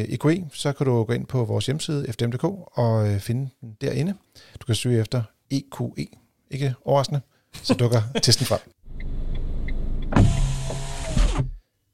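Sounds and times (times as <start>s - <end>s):
speech: 0.0s - 8.8s
laughter: 7.6s - 8.6s
car power window motor whirring while rolling up: 8.9s - 11.6s
car window closing with a soft thump: 10.0s - 11.6s.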